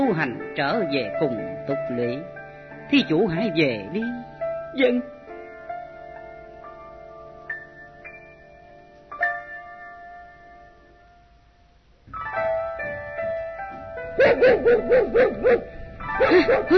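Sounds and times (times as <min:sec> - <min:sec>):
sustained quiet tonal music: 0:00.0 - 0:16.7
speech: 0:00.1 - 0:05.2, 0:14.6 - 0:16.7
dog barking loudly: 0:14.2 - 0:16.7.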